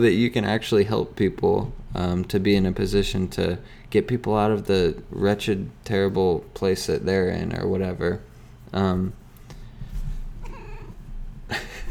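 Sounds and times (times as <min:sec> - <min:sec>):
speech: 0:00.0 - 0:09.2
female pet cat meowing and yowling: 0:10.3 - 0:11.2.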